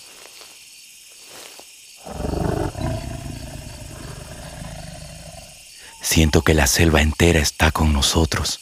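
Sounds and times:
tiger roaring: 2.0s - 5.6s
speech: 6.0s - 8.5s.

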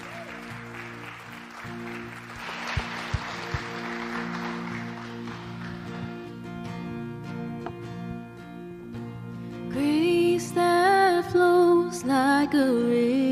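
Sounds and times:
audience clapping: 0.0s - 6.4s
soft instrumental music: 0.0s - 13.3s.

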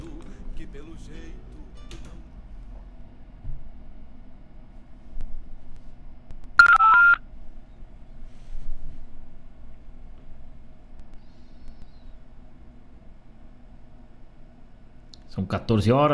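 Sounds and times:
speech: 0.7s - 2.0s, 15.4s - 16.1s
telephone keypad tones: 6.6s - 7.2s.

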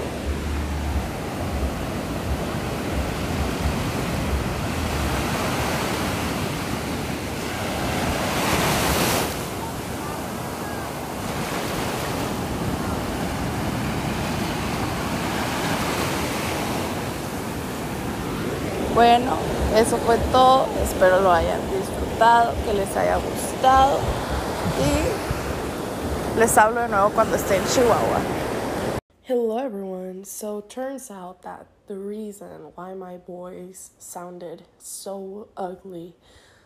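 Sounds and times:
ocean waves breaking on a beach: 0.0s - 29.0s
wind rumble: 0.0s - 29.0s
speech: 19.0s - 24.2s, 24.8s - 25.3s, 26.4s - 28.4s, 29.3s - 36.4s.

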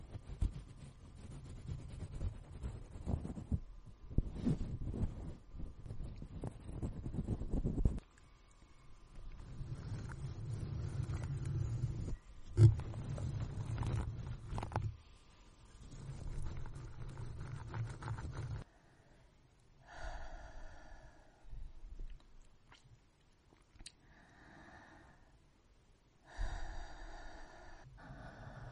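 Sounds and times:
soft rubbing and squeaky brushing: 0.0s - 8.0s, 9.0s - 18.7s
gentle breathing: 4.1s - 21.9s, 23.9s - 25.5s, 26.2s - 28.7s.

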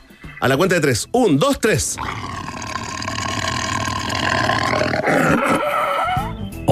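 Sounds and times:
speech: 0.4s - 2.4s
person imitating a tiger roar: 2.0s - 6.3s.

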